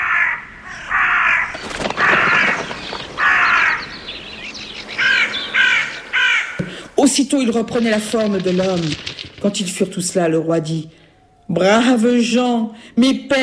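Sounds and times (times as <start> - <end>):
flock of crows cawing: 0.0 - 7.0
rough outdoor noise: 0.0 - 13.4
speech: 7.0 - 13.4.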